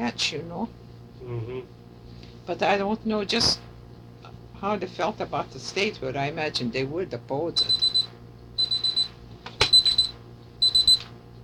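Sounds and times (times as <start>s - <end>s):
speech: 0.1s - 1.8s, 2.5s - 3.6s, 4.6s - 7.9s
alarm clock beeping with high-pitched electronic pulses: 7.6s - 11.1s.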